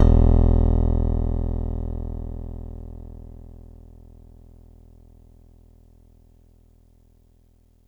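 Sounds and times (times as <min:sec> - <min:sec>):
bass guitar tuning notes: 0:00.0 - 0:03.6.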